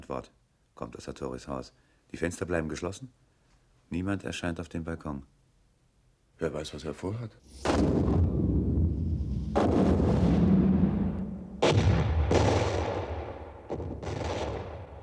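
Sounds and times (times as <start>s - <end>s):
speech: 0.1s - 3.2s, 3.9s - 5.4s, 6.4s - 8.4s
volleys of gunfire from a house with closed windows: 7.6s - 8.6s, 9.5s - 11.0s, 11.6s - 15.0s.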